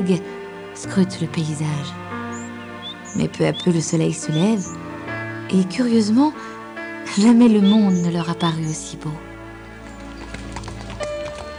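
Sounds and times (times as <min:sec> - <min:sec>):
speech: 0:00.0 - 0:02.2, 0:03.1 - 0:04.9, 0:05.5 - 0:09.3
horse-drawn carriage hooves clip-clopping in the street: 0:09.7 - 0:11.5.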